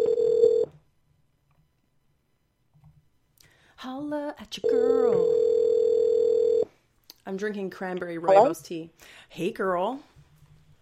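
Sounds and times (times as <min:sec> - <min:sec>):
phone line ringing tone electronic beep: 0:00.0 - 0:00.7, 0:04.6 - 0:06.7
speech: 0:03.8 - 0:05.4, 0:07.2 - 0:10.2.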